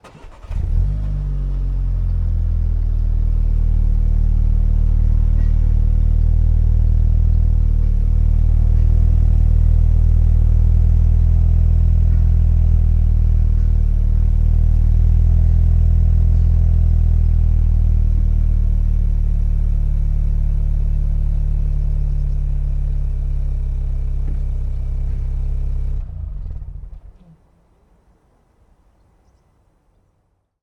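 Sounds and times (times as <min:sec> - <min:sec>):
Audi Q2 engine starting: 0:00.0 - 0:27.5.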